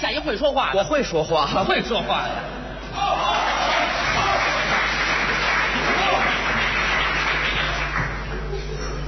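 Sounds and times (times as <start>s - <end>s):
crowd noise: 0.0s - 9.0s
speech: 0.2s - 3.4s
large audience applause: 3.2s - 8.6s.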